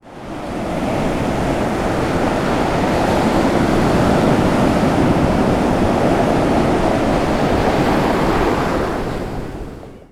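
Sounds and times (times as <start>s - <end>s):
ocean ambience: 0.1s - 10.1s.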